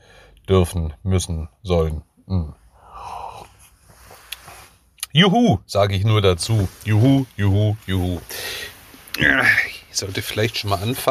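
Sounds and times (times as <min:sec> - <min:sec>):
soft wheezy breathing close to the microphone: 0:00.0 - 0:00.4, 0:02.6 - 0:04.8, 0:08.2 - 0:09.9
speech: 0:00.5 - 0:02.6, 0:05.1 - 0:08.4, 0:09.2 - 0:11.0.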